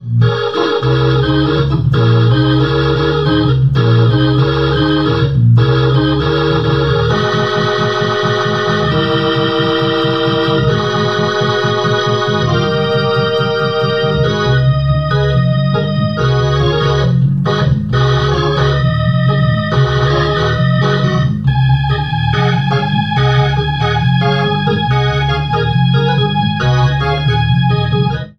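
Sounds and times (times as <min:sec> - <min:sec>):
B3 organ gospel shout through rotary amplifier speaker: 0:00.0 - 0:28.3.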